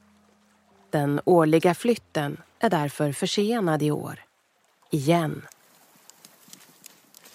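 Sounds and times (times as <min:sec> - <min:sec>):
speech: 0:00.9 - 0:04.3, 0:04.9 - 0:05.5
reindeer hooves clattering on clear ice of a lake: 0:05.8 - 0:07.3.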